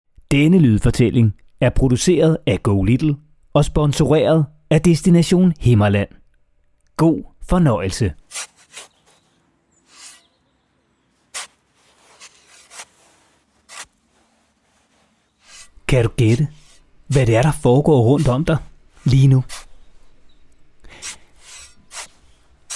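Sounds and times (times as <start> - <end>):
speech: 0.3 - 6.2, 7.0 - 8.9, 15.9 - 19.6
archaeologists digging soil and scraping away sand during an excavation: 8.2 - 22.7.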